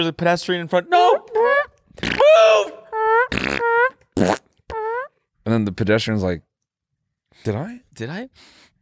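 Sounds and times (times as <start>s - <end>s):
speech: 0.0s - 1.2s, 2.0s - 2.8s, 5.5s - 6.5s, 7.3s - 8.6s
fart sound effect played as a horn: 2.0s - 2.3s, 3.0s - 5.1s.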